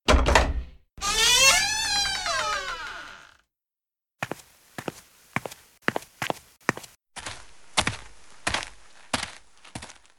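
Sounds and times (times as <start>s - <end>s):
door creaking open into a backyard: 0.1s - 3.5s
footsteps walking: 4.2s - 10.1s.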